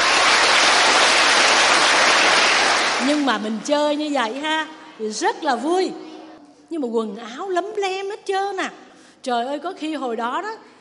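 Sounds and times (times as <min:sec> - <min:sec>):
group applauding: 0:00.0 - 0:03.7
speech: 0:03.2 - 0:06.1, 0:06.7 - 0:10.7.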